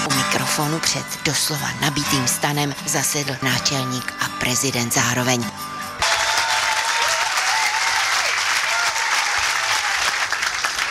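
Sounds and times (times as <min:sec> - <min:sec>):
speech: 0:00.6 - 0:05.8
large audience applauding in a packed pub tent: 0:06.0 - 0:10.8.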